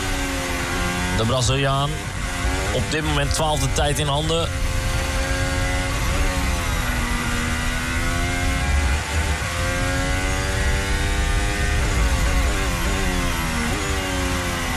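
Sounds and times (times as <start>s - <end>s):
Formula 1 car engine roaring through rapid gear changes: 0.0s - 14.7s
wind and road rumble under a Formula 1 car: 0.0s - 14.7s
speech: 1.2s - 2.1s, 2.8s - 4.7s.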